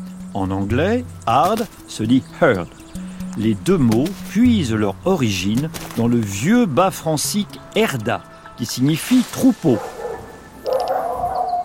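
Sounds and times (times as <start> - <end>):
speech: 0.4 - 2.8, 3.4 - 9.9
dogs barking and yelping: 9.7 - 11.6.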